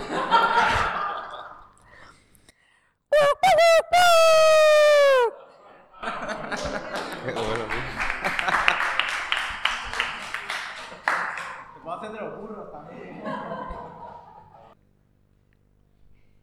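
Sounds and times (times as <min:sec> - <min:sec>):
laughter: 0:00.0 - 0:01.6, 0:03.2 - 0:14.8
person imitating rooster crowing: 0:03.2 - 0:05.4
person talking: 0:03.2 - 0:05.4.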